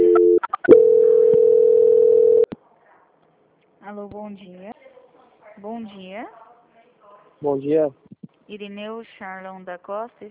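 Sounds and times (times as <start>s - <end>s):
telephone tones during a call transfer: 0.0s - 2.5s
speech: 3.9s - 4.8s, 5.6s - 6.4s, 7.4s - 10.2s.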